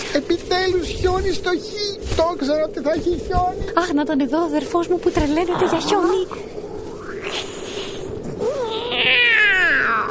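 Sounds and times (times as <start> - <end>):
speech: 0.2 - 6.6
cat yowling: 8.4 - 10.0.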